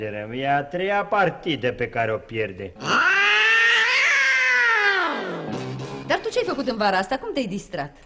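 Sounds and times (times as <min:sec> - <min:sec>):
speech: 0:00.0 - 0:03.2, 0:06.4 - 0:08.0
cat meowing: 0:02.8 - 0:05.4.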